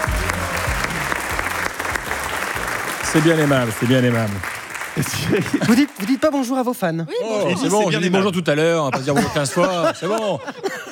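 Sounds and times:
loud sustained applause from a large audience: 0.0s - 6.8s
speech: 3.1s - 10.7s
laughter: 5.0s - 6.2s, 8.8s - 10.9s.

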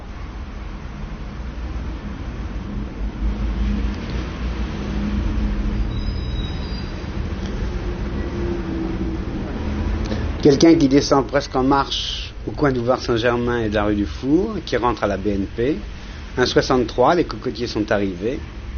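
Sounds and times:
wood and coal delivery truck engine rumbling while turning in city street traffic: 0.0s - 18.7s
brief high squeal: 5.7s - 9.2s
speech: 10.4s - 18.6s.

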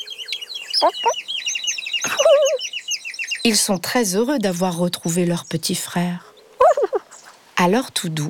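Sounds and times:
chicks peeping in rapid high chirps: 0.8s - 1.2s, 2.0s - 2.7s
mother hen clucking: 0.8s - 1.2s, 2.1s - 2.6s, 6.6s - 7.2s
speech: 0.8s - 1.3s, 3.4s - 6.3s, 7.6s - 8.2s.

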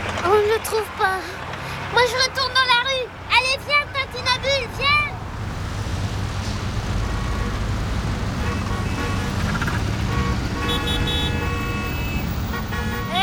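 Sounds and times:
busy street traffic: 0.0s - 13.2s
car engine roaring in busy street traffic: 0.0s - 13.2s
speech: 0.5s - 5.0s
tonal horn-like blasts: 8.4s - 9.4s, 10.0s - 13.2s.

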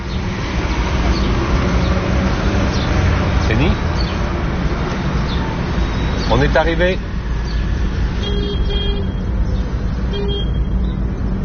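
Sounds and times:
loud rumble of street traffic: 0.0s - 11.4s
speech: 6.4s - 7.1s
bus horn honking: 8.2s - 9.3s, 10.1s - 10.8s.

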